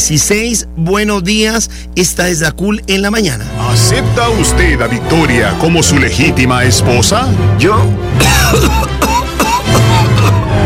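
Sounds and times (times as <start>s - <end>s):
speech: 0.1s - 9.1s
coughing fit during wedding vows: 8.2s - 10.6s.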